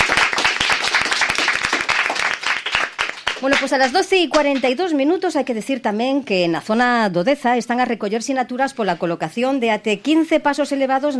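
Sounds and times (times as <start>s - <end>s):
group of schoolchildren applauding: 0.0s - 3.7s
speech: 3.4s - 11.1s.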